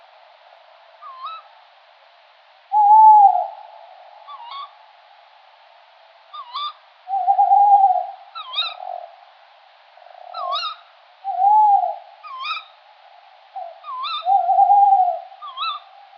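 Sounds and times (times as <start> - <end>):
adult male tawny owl Strix aluco hooting territorial advertising call: 1.0 - 1.5, 2.7 - 4.8, 6.3 - 9.2, 10.0 - 12.8, 13.6 - 16.1.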